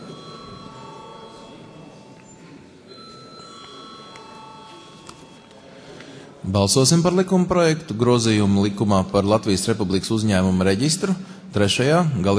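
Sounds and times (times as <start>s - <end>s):
electric bell ringing in a parliament chamber before a vote: 0.0s - 5.5s
speech: 6.5s - 12.3s.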